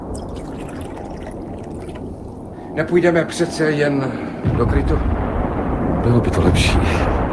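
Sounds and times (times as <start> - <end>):
tea pouring into a cup: 0.1 - 2.4
speech: 2.8 - 5.2, 6.0 - 7.2.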